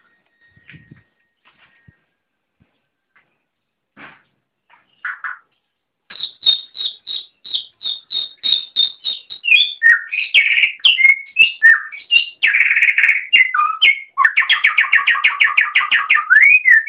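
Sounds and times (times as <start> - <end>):
Oriental magpie-robin singing: 6.1 - 16.8.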